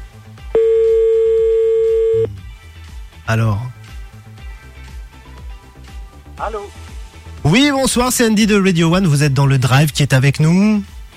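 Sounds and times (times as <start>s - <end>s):
ringback tone on an outgoing phone call: 0.6s - 2.3s
speech: 3.3s - 3.7s, 6.4s - 10.9s.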